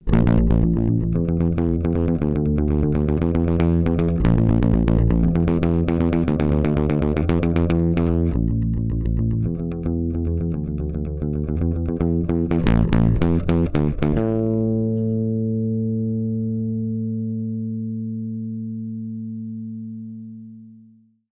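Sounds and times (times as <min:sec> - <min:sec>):
overdriven limited bass guitar: 0:00.0 - 0:21.0.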